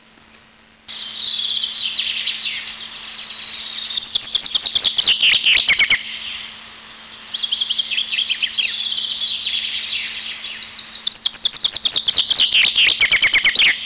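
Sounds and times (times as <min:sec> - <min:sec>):
Eurasian chaffinch song with rapid chirping: 0:00.9 - 0:13.8.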